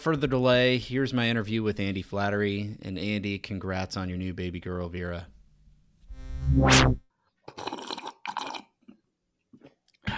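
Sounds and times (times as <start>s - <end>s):
speech: 0.0s - 5.4s, 6.4s - 7.7s
wet crackly sips: 7.5s - 8.6s
slurping a drink: 7.5s - 8.7s.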